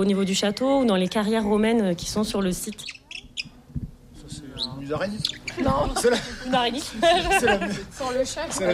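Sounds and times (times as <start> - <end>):
speech: 0.0 - 3.0, 4.9 - 8.7
overlapping chatter and voices: 0.0 - 8.7
shrew squeaking in thin high chirps: 2.6 - 3.6, 4.5 - 5.8
laughter: 5.5 - 8.7.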